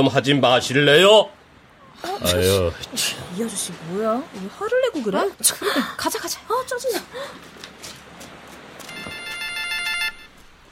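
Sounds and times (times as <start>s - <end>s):
speech: 0.0s - 1.4s, 2.0s - 7.7s
faint noise: 0.0s - 10.7s
telephone ringing with an electronic trill: 8.9s - 10.4s.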